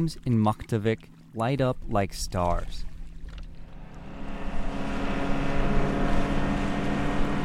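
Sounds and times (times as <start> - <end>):
speech: 0.0 - 2.9
rushing wash of water: 0.0 - 7.4
motorboat engine droning on a river crossing: 2.5 - 7.4.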